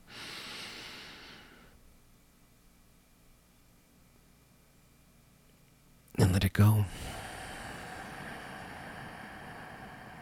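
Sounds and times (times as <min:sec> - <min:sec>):
long slow deep breath in: 0:00.0 - 0:01.8, 0:06.9 - 0:10.2
speech: 0:06.2 - 0:07.1.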